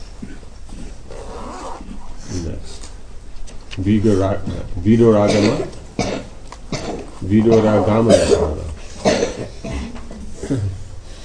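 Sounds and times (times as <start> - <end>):
speech: 3.8 - 5.8, 7.3 - 8.6
person coughing in rough bursts: 5.3 - 10.8.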